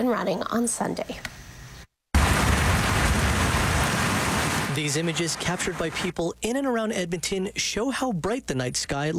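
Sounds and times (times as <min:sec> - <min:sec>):
speech: 0:00.0 - 0:01.4, 0:04.8 - 0:09.1
heavy rain pouring in a loud steady roar: 0:02.2 - 0:06.1.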